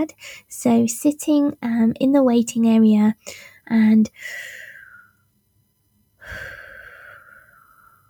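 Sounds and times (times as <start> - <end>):
speech: 0.0 - 4.6
slow breathing in and out: 4.2 - 5.3, 6.2 - 8.0.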